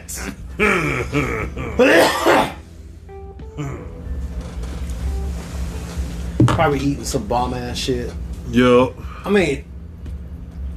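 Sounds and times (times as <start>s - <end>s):
quiet hum with faint tones: 0.0s - 10.7s
speech: 0.1s - 2.4s, 6.6s - 9.7s
person coughing loudly: 0.1s - 2.6s.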